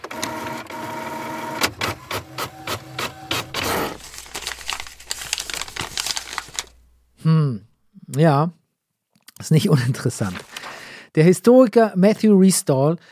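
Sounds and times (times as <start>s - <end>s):
printer humming and clattering while printing an article: 0.0s - 4.1s
printout paper crinkling and rustling as it is lifted: 1.8s - 6.9s, 10.1s - 10.8s
speech: 8.2s - 8.6s, 9.4s - 13.0s.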